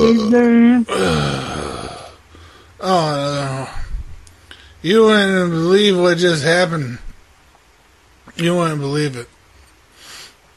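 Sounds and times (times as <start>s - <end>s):
person burping: 0.0s - 2.2s, 2.8s - 3.9s
speech: 0.1s - 1.5s, 2.8s - 3.7s, 4.8s - 7.0s, 8.4s - 9.4s.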